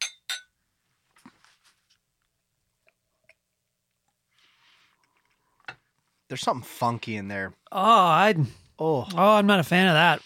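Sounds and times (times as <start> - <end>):
glasses clinking in a toast at a spirit tasting: 0.0 - 0.5
speech: 6.3 - 10.2.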